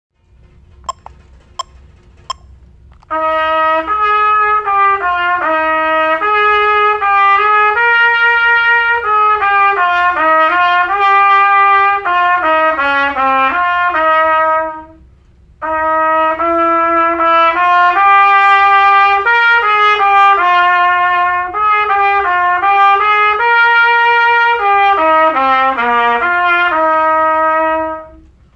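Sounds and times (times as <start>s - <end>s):
trumpet: 3.0s - 28.5s.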